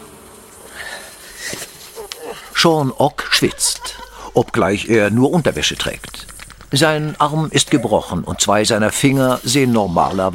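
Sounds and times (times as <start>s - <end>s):
swarm of wasps buzzing: 0.0s - 10.3s
laughter: 1.5s - 9.3s
speech: 2.6s - 10.3s.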